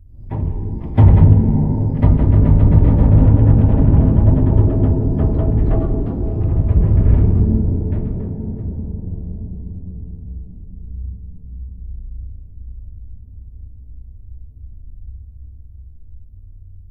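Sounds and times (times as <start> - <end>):
bridge groaning: 0.2 - 10.3.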